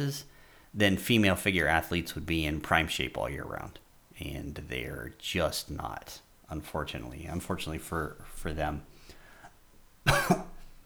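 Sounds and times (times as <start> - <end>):
speech: 0.0 - 8.9, 10.0 - 10.5
harsh cough: 10.0 - 10.7.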